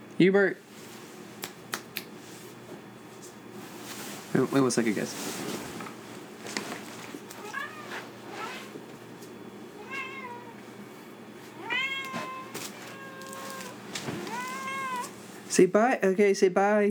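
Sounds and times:
low hum: 0:00.0 - 0:16.8
speech: 0:00.2 - 0:00.7, 0:04.4 - 0:05.7, 0:15.6 - 0:16.8
soft knocks and rustles: 0:02.5 - 0:09.4, 0:12.0 - 0:15.4
pet cat meowing: 0:07.4 - 0:08.7, 0:09.8 - 0:10.6, 0:11.5 - 0:15.2.

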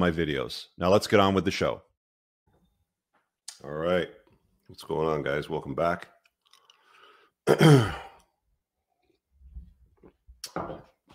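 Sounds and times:
speech: 0:00.0 - 0:01.9, 0:03.6 - 0:06.1, 0:07.4 - 0:08.0
man clearing his throat: 0:07.4 - 0:08.2.

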